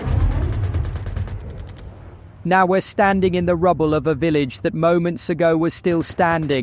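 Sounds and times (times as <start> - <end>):
rapid bursts of gunfire: 0.0 - 2.1, 5.8 - 6.6
heavy booming tank explosion: 0.0 - 4.3
speech: 2.4 - 6.6.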